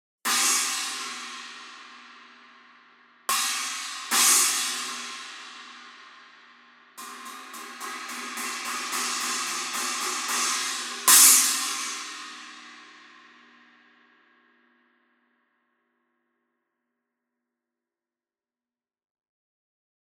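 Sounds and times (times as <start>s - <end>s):
custom 20-inch china cymbal: 0.3s - 14.5s.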